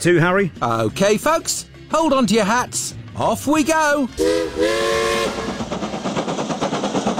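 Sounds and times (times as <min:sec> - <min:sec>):
speech: 0:00.0 - 0:05.9
steam train whistle: 0:04.2 - 0:05.7
steam train engine chuffing as it pulls away: 0:04.2 - 0:07.1.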